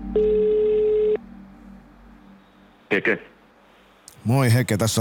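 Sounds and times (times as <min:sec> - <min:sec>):
speech: 0:00.1 - 0:00.4, 0:02.9 - 0:03.3, 0:04.3 - 0:05.0
telephone ringback tone down a phone line: 0:00.1 - 0:01.2.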